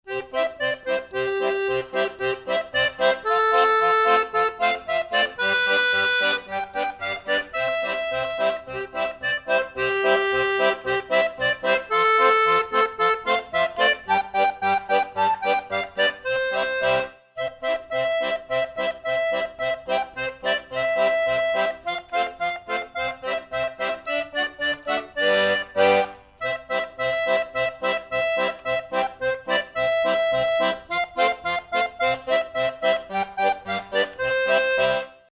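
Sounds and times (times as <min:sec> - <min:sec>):
accordion playing a Christmas tune: 0:00.0 - 0:35.2.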